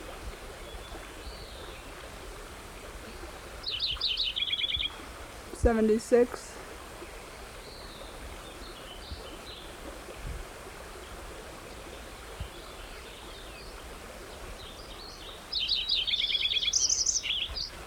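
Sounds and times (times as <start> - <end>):
rushing water: 0.0 - 17.8
white-crowned sparrow singing: 3.7 - 4.9, 15.5 - 17.7
speech: 5.6 - 6.5.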